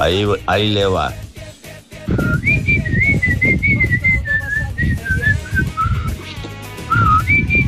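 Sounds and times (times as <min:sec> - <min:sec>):
speech: 0:00.0 - 0:01.2, 0:02.1 - 0:02.5
man whistling a melody in Manta: 0:02.1 - 0:07.6.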